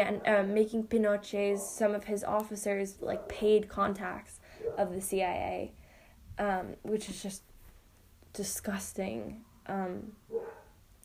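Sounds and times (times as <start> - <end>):
speech: 0.0 - 5.8, 6.4 - 7.5, 8.4 - 10.2
dog bark: 10.3 - 10.7.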